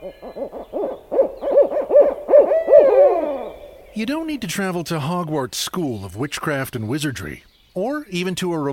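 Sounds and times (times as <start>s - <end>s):
owl hooting: 0.0s - 4.1s
speech: 4.0s - 8.7s.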